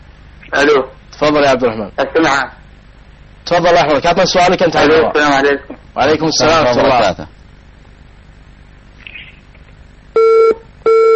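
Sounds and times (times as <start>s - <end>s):
speech: 0.5s - 2.6s, 3.5s - 7.4s
phone line disconnection tone beeps after a dropped call: 10.2s - 11.1s.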